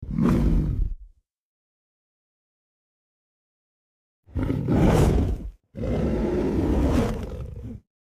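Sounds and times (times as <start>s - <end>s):
cinematic bear roar and growling: 0.0s - 1.1s, 4.3s - 7.8s.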